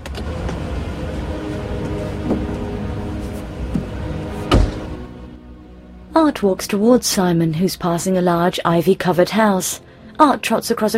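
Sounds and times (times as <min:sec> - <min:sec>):
car pulling up: 0:00.0 - 0:05.4
car door thud as someone gets out: 0:03.8 - 0:05.0
speech: 0:06.2 - 0:10.9.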